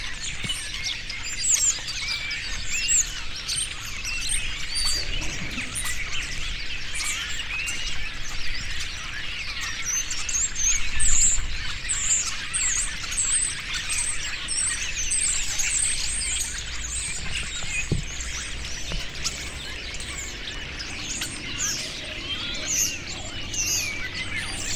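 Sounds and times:
starling flock chattering in trees: 0.1 - 24.7.

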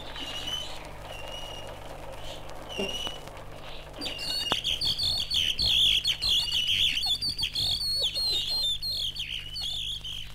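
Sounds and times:
wood turner whistling in imitation of songbirds: 0.0 - 1.8, 4.0 - 10.3
caged songbirds chirping and trilling in a wood turner's workshop in Udine: 0.0 - 10.3
steady low hum: 0.0 - 10.3.

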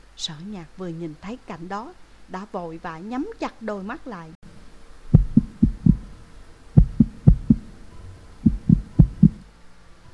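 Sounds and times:
speech: 0.2 - 4.4
fast heartbeat: 5.1 - 6.1, 6.8 - 7.7, 8.4 - 9.4.

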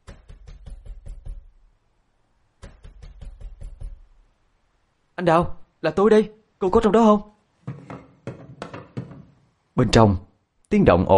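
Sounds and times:
heavy pounding on a room door: 0.0 - 1.6, 2.6 - 4.2, 7.7 - 9.4
speech: 5.2 - 7.3, 9.8 - 11.1.

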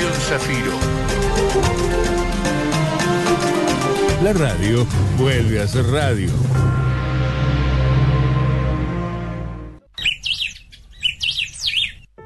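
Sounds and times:
steady tonal music: 0.0 - 9.8
speech: 0.3 - 2.6, 4.2 - 6.8
native birds singing: 9.9 - 12.1.

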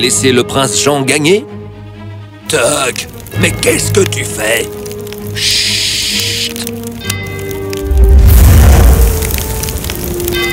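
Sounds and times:
speech: 0.0 - 1.6, 2.5 - 6.6
castle burning with fire crackling and roaring: 2.4 - 10.5.

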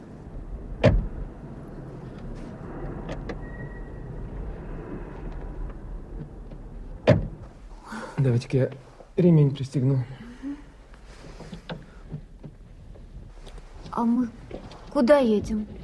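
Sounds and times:
low steady rumble: 0.0 - 15.8
car doors thudding shut as someone gets into a car: 0.7 - 1.3, 6.1 - 7.6
speech: 8.2 - 10.2, 14.0 - 15.8.

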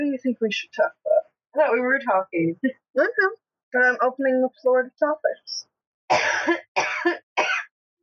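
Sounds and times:
speech: 0.2 - 6.7
person coughing harshly: 6.1 - 7.7.

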